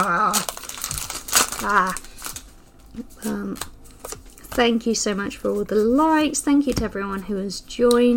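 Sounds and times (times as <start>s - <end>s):
foil trading card pack being torn open: 0.0s - 4.4s
speech: 1.6s - 2.1s, 3.0s - 3.8s, 4.6s - 8.1s.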